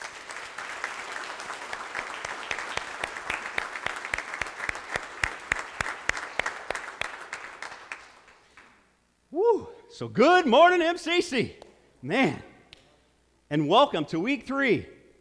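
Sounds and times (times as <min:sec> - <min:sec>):
large audience applauding: 0:00.0 - 0:08.8
speech: 0:10.0 - 0:12.5, 0:13.5 - 0:14.9.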